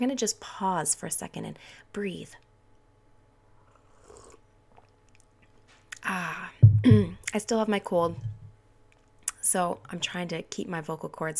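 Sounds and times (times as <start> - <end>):
speech: 0.0 - 2.5, 6.0 - 8.4, 9.4 - 11.3
person sipping hot chocolate: 3.6 - 5.3.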